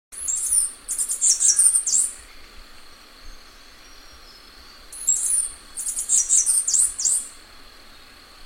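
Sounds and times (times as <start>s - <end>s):
bamboo cicada shrill pulsing song: 0.2s - 2.2s, 3.5s - 7.4s
faint steady high hum: 0.2s - 8.4s.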